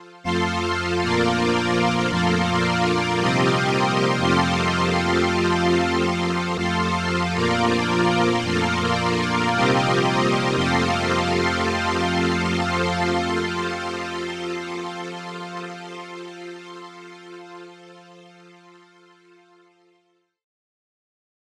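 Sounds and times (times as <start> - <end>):
mixed synth pad: 0.3 - 16.7.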